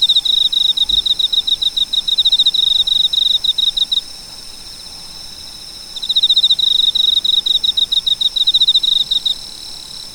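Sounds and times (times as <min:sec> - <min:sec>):
cricket chirping: 0:00.0 - 0:10.1.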